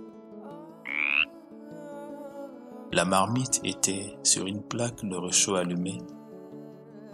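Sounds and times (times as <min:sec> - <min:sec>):
soft steady musical backdrop: 0:00.0 - 0:07.1
frog croak: 0:00.8 - 0:01.3
speech: 0:02.9 - 0:06.2.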